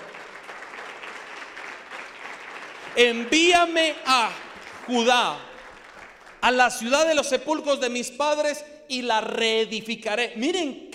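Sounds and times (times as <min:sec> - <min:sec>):
congregation applauding: 0:00.0 - 0:06.9
speech: 0:03.0 - 0:05.5, 0:06.4 - 0:10.9.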